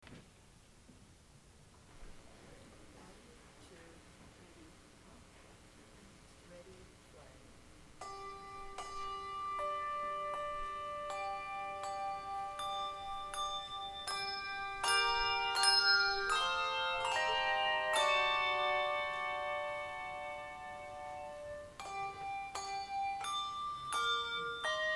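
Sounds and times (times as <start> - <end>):
handbells ringing: 8.0 - 24.9.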